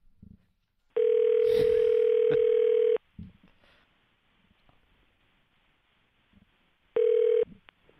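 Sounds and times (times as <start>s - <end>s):
faint noise: 0.0s - 7.9s
electronic ringback tone of an outgoing phone call: 1.0s - 3.0s, 7.0s - 7.5s.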